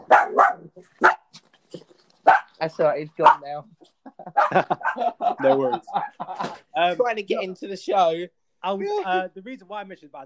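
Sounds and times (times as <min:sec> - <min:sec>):
dog barking: 0:00.0 - 0:01.3, 0:02.2 - 0:02.6, 0:03.2 - 0:03.5, 0:04.3 - 0:05.2
speech: 0:00.8 - 0:01.1, 0:02.6 - 0:10.2
laughter: 0:03.8 - 0:07.0.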